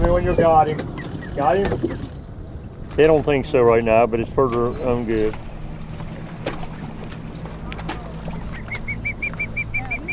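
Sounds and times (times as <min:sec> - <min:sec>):
low rumble of boat engine: 0:00.0 - 0:10.1
speech: 0:00.2 - 0:02.2, 0:03.0 - 0:05.4
rescued bird peeping: 0:00.6 - 0:02.4, 0:04.7 - 0:06.9, 0:08.3 - 0:10.1.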